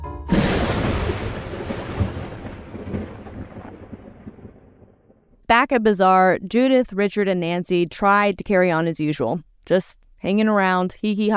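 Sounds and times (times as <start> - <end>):
thunderclap rolling into deep rumble: 0.3 - 5.3
speech: 5.5 - 11.3.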